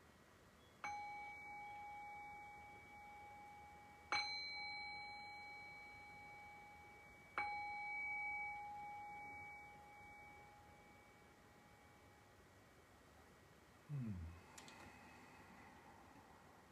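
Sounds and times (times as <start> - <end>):
meditation bell struck: 0.8 - 12.4.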